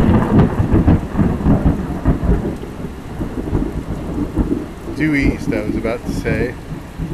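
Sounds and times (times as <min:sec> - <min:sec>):
steady rain pattering: 0:00.0 - 0:07.1
thunder rumbling through a thunderstorm on a very hot day: 0:00.0 - 0:07.1
speech: 0:05.0 - 0:06.6.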